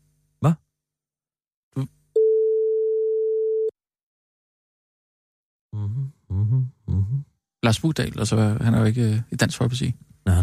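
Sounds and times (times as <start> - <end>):
speech: 0.4 - 0.6, 1.8 - 2.0, 7.0 - 10.4
telephone busy signal: 2.2 - 3.7.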